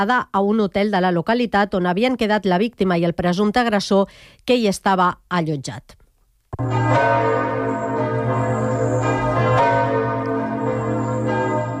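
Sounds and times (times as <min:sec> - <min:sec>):
speech: 0:00.0 - 0:06.0, 0:06.6 - 0:07.8
church bells pealing in welcome: 0:06.6 - 0:11.7.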